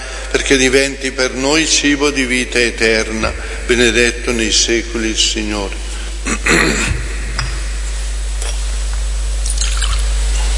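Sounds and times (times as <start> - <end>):
steady low hum: 0.0 - 10.5
speech: 0.5 - 7.0
water poured into wine in a chalice: 9.4 - 10.1.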